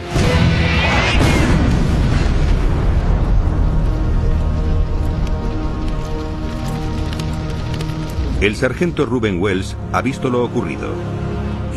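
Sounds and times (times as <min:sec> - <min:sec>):
heavy rumbling blast: 0:00.0 - 0:05.9
roar of debris and crackling noise: 0:00.9 - 0:09.0
speech: 0:08.4 - 0:11.3.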